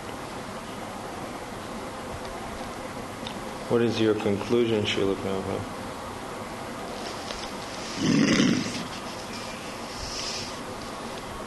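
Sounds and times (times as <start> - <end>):
speech: 3.7 - 5.8
snoring: 8.0 - 8.9.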